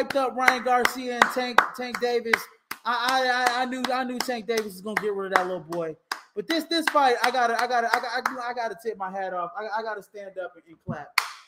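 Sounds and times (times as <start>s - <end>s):
hand clap: 0.0s - 8.5s, 11.1s - 11.4s
speech: 0.0s - 11.2s.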